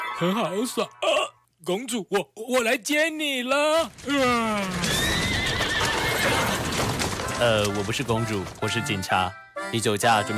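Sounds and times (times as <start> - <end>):
speech: 0.2 - 4.9, 6.4 - 10.3
horse hooves clattering pulling a pumpkin carriage: 3.9 - 9.3
horse neighing: 4.7 - 6.7.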